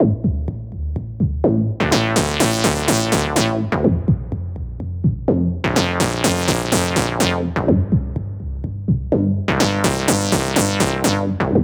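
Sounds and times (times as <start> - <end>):
minimal kick drum loop: 0.0 - 11.6.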